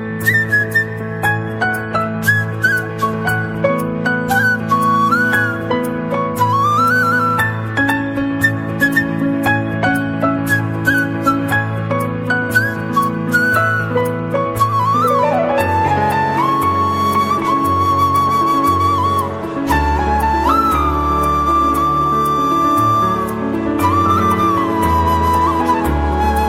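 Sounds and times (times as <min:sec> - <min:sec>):
flute ringtone: 0:00.2 - 0:26.4.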